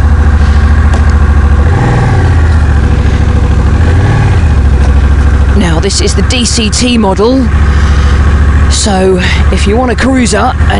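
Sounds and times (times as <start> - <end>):
large 1100cc motorcycle engine starting and idling: 0.0 - 10.7
speech: 5.9 - 10.7.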